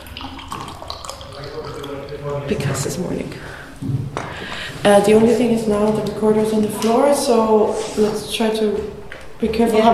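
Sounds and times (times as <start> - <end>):
coffee pouring into a cup: 0.0 - 2.9
speech: 2.3 - 9.9.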